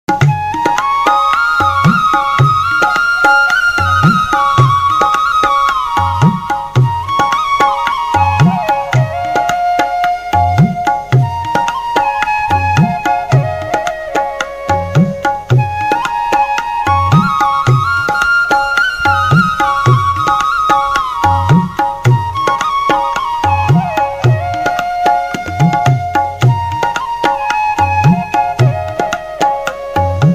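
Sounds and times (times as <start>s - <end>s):
romantic bansuri flute ringtone: 0.1s - 30.3s.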